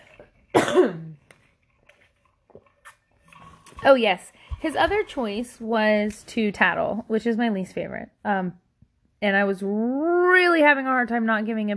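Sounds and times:
speech: 0:00.2 - 0:01.2, 0:03.8 - 0:08.6, 0:09.2 - 0:11.7
loud cough with throaty voiced rasp: 0:00.5 - 0:01.2
breaths: 0:04.3 - 0:04.7.

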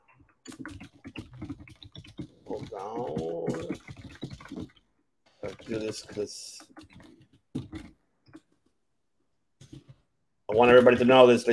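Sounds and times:
rapid computer keyboard typing: 0:00.0 - 0:08.6
speech: 0:02.8 - 0:03.8, 0:05.7 - 0:06.7, 0:10.6 - 0:11.5.

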